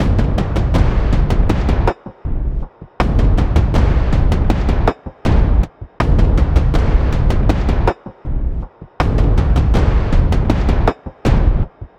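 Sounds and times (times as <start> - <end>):
percussion loop: 0.0 - 11.9.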